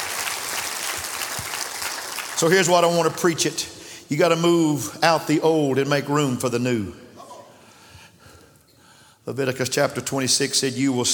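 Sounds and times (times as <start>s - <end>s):
audience applauding: 0.0s - 3.2s
speech: 2.4s - 7.0s, 9.3s - 11.1s.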